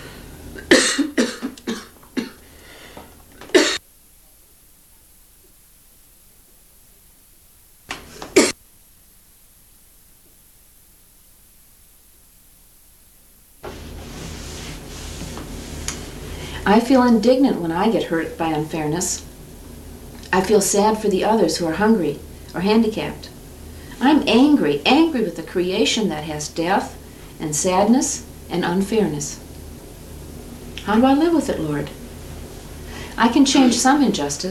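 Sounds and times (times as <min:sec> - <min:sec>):
static hiss: 0:00.0 - 0:34.5
person coughing harshly: 0:00.6 - 0:02.4, 0:03.5 - 0:03.8, 0:08.3 - 0:08.6
speech: 0:16.7 - 0:19.3, 0:20.3 - 0:23.3, 0:24.0 - 0:29.4, 0:30.9 - 0:32.0, 0:33.2 - 0:34.5.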